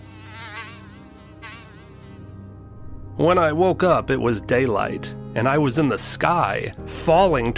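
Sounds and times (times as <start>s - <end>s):
fly buzzing: 0.0s - 2.7s
speech: 3.2s - 7.5s.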